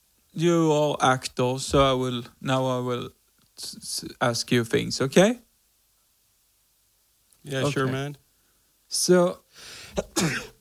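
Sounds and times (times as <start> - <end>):
speech: 0.4 - 5.4, 7.4 - 8.2, 8.9 - 10.5
person sneezing loudly: 9.8 - 10.6.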